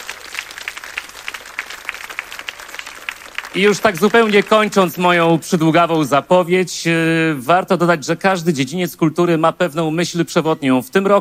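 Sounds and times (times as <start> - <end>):
audience applause at a concert event: 0.0 - 5.3
speech: 3.5 - 11.1.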